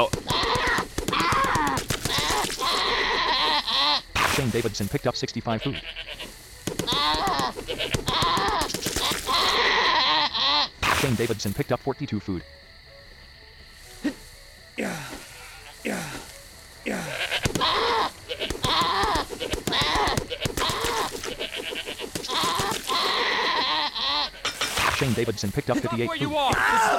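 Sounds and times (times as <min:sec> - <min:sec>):
sharp percussive bursts: 0:00.0 - 0:02.7, 0:06.6 - 0:09.4, 0:17.4 - 0:23.1
video-game goats bleating: 0:00.0 - 0:04.8, 0:05.4 - 0:10.8, 0:14.8 - 0:26.9
speech: 0:04.4 - 0:06.1, 0:07.1 - 0:10.1, 0:11.0 - 0:12.7, 0:25.1 - 0:26.9.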